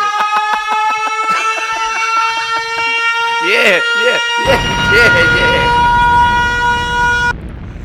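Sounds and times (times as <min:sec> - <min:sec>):
laughter: 0:00.0 - 0:05.6
steady siren sound effect: 0:00.0 - 0:07.4
speech: 0:03.6 - 0:05.8
faint low rumble: 0:05.7 - 0:07.8.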